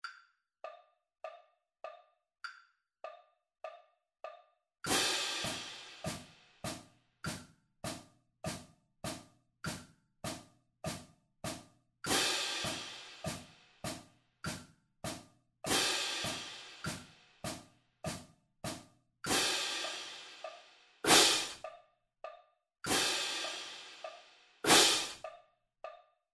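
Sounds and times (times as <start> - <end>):
cymbals in triplet rhythm: 4.9 - 21.6, 22.9 - 25.2.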